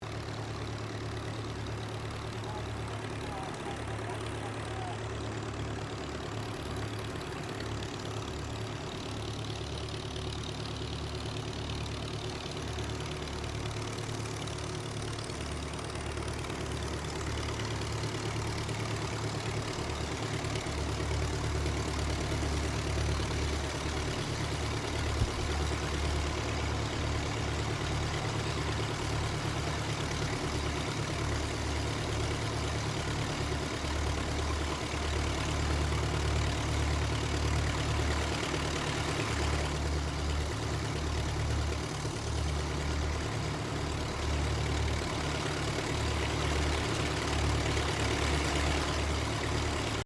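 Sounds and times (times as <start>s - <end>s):
de Havilland DHA-3 Drover tri-engine aircraft idling: 0.0s - 50.0s.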